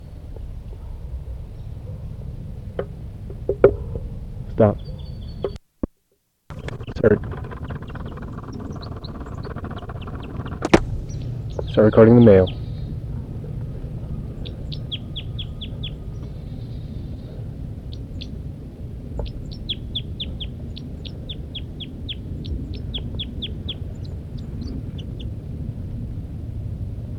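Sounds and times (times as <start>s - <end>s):
steady low rumble: 0.0s - 5.6s, 6.5s - 27.1s
speech: 4.6s - 5.6s, 7.0s - 7.3s, 11.8s - 12.6s
female bird giving flight calls from its nest: 6.5s - 25.6s.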